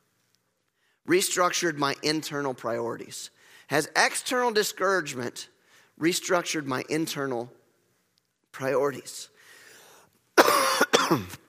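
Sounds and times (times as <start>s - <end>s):
speech: 1.1s - 7.6s, 8.5s - 9.3s, 11.1s - 11.4s
person coughing harshly despite a cough drop: 10.4s - 11.4s.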